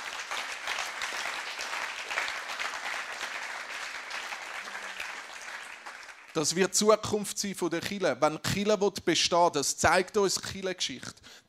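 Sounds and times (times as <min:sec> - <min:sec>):
audience applause: 0:00.0 - 0:06.6
speech: 0:06.4 - 0:11.4.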